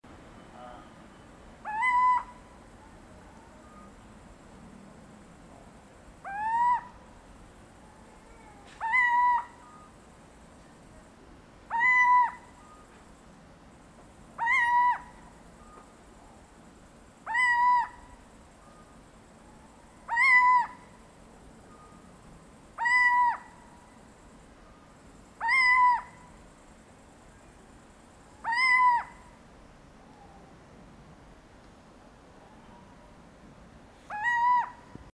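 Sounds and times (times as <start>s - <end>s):
Athene noctua little owl calling: 1.6s - 4.0s, 6.2s - 7.0s, 7.8s - 10.0s, 11.7s - 13.0s, 14.4s - 15.9s, 17.2s - 22.1s, 22.7s - 26.4s, 28.3s - 29.4s, 34.0s - 35.0s.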